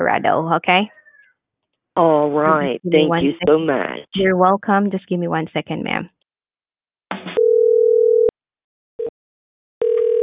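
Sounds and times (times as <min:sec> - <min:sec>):
speech: 0:00.0 - 0:01.0, 0:02.0 - 0:06.2
telephone ringing tone on a call: 0:07.4 - 0:08.3, 0:09.8 - 0:10.2.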